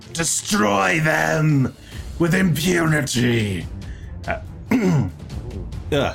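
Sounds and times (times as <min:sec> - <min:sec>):
speech: 0:00.0 - 0:05.2, 0:05.9 - 0:06.1
person giving short throaty coughs: 0:04.7 - 0:05.2.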